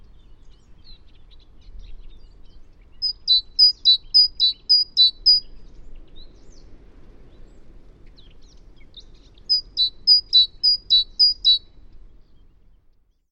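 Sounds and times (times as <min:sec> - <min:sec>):
quiet background hiss: 0:00.0 - 0:13.1
great tit singing high ringing two-note phrases: 0:00.6 - 0:05.6, 0:08.9 - 0:11.7.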